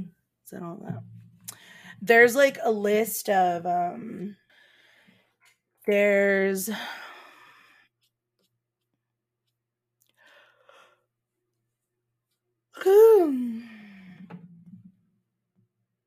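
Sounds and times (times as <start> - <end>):
speech: 0.5 - 1.2, 1.9 - 4.4, 5.8 - 7.1, 12.8 - 13.7
person yawning: 12.8 - 13.9.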